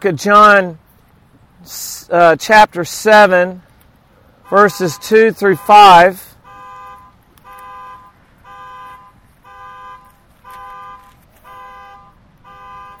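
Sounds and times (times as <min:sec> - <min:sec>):
speech: 0:00.0 - 0:00.8, 0:01.6 - 0:03.7, 0:04.5 - 0:06.3
car horn honking outside: 0:04.4 - 0:12.9.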